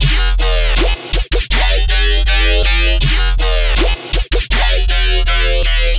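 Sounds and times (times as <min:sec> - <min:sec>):
dubstep drop synth bass loop at 160 BPM in F minor: 0:00.0 - 0:05.9.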